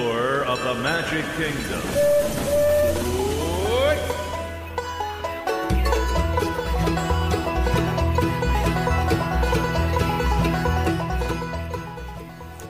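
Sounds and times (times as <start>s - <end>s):
lively music: 0.0s - 12.6s
speech: 0.7s - 2.6s
steam train hissing: 1.0s - 4.7s
rising steam train whistle: 1.9s - 4.4s.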